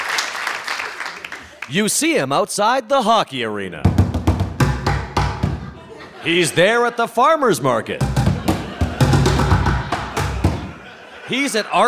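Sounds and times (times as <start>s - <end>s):
speech: 1.7s - 4.0s, 6.2s - 8.1s, 11.3s - 11.8s
drumming on upside-down plastic pails: 3.8s - 5.8s, 8.0s - 10.8s
laughter: 5.4s - 7.2s, 7.8s - 11.8s.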